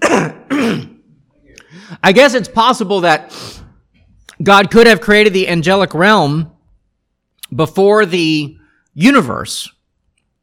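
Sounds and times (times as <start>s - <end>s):
loud cough: 0.0s - 1.7s
speech: 2.0s - 3.6s, 4.4s - 6.5s, 7.5s - 9.8s.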